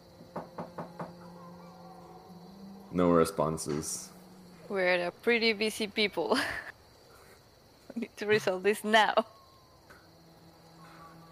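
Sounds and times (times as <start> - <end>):
faint steady hum: 0.0 - 11.3
knocking on a wooden door: 0.2 - 1.3
speech: 3.0 - 4.1, 4.7 - 6.7, 8.0 - 9.3.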